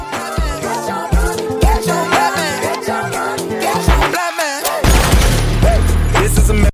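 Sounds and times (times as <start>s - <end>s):
loud music track with heavy bass and melodic lines: 0.0s - 6.7s
gunfire from a music video clip: 4.8s - 5.8s.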